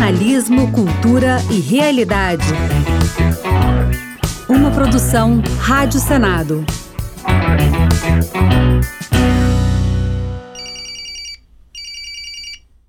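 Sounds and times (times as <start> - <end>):
loud musical passage: 0.0 - 10.4
speech: 0.1 - 3.3, 4.7 - 9.0
telephone bell ringing in trilling bursts: 10.5 - 12.6.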